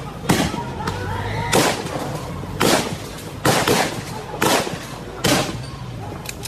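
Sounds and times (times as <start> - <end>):
sharp loud gunshots fired at close range: 0.2 - 0.7, 1.5 - 5.7.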